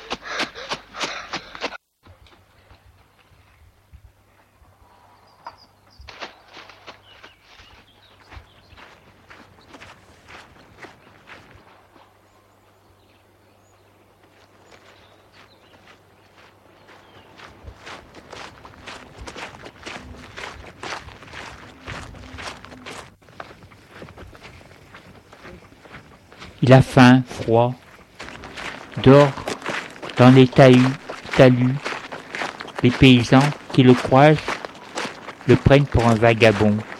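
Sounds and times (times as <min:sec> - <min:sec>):
footsteps of someone walking through the countryside: 0:06.0 - 0:12.9, 0:13.7 - 0:36.9
speech: 0:26.6 - 0:27.8, 0:29.0 - 0:29.4, 0:30.2 - 0:31.8, 0:32.8 - 0:34.5, 0:35.5 - 0:36.9.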